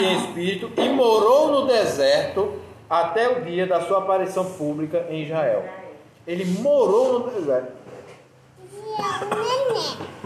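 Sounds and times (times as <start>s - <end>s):
speech: 0.0s - 7.9s, 9.0s - 10.2s
baby babbling with coos and squeals: 8.6s - 10.1s.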